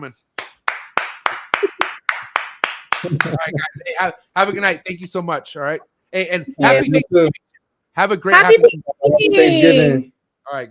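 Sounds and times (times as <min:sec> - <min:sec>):
speech: 0:00.0 - 0:00.3, 0:03.0 - 0:07.4, 0:08.0 - 0:10.6
hand claps: 0:00.3 - 0:03.7.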